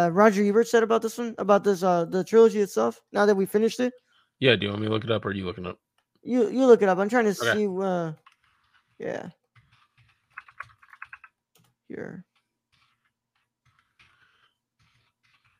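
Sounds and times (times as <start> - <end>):
speech: 0.0 - 8.2, 9.0 - 9.4, 11.9 - 12.3
typing on a computer keyboard: 8.2 - 15.5.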